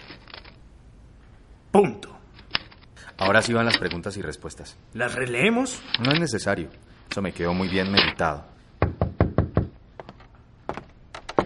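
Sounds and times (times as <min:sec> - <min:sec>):
speech: 0:01.7 - 0:02.2, 0:03.2 - 0:08.5
knocking on an office door: 0:08.8 - 0:09.8.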